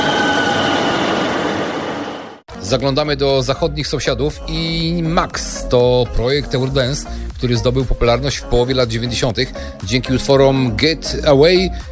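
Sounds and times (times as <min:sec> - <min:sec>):
1990s express train pulling into a station platform: 0:00.0 - 0:02.4
speech: 0:02.7 - 0:11.9.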